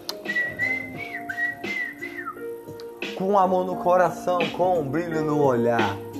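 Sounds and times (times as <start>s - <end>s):
soft musical accompaniment: 0.0s - 6.1s
cheerful human whistling imitating a bird: 0.3s - 2.6s
speech: 3.2s - 6.1s.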